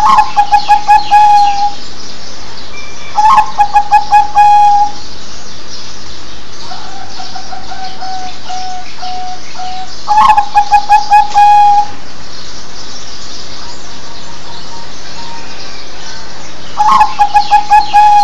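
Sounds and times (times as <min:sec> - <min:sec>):
zebra dove singing: 0:00.0 - 0:01.8, 0:03.2 - 0:05.0, 0:06.7 - 0:11.9, 0:16.8 - 0:18.2.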